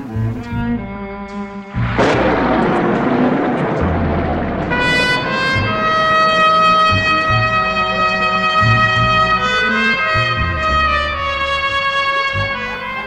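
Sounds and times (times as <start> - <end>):
violent downpour: 1.7 - 11.4
loud close thunderclap at night: 1.7 - 13.0.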